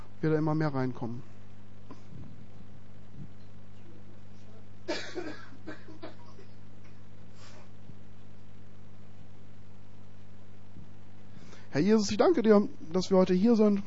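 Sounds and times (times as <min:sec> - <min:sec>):
steady low electrical hum: 0:00.0 - 0:13.8
speech: 0:00.2 - 0:01.3, 0:04.9 - 0:05.8, 0:11.7 - 0:13.8
person coughing: 0:04.9 - 0:06.6.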